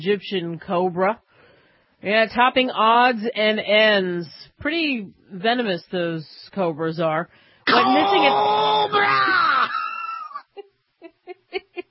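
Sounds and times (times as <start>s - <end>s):
speech: 0.0s - 1.3s, 2.0s - 9.4s
person screaming in fright: 7.7s - 10.4s
person's short panicky yelps: 7.7s - 10.5s.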